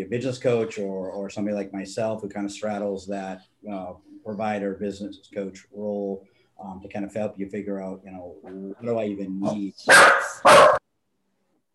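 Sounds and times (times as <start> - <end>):
speech: 0.0 - 10.8
dog barking: 9.9 - 10.8.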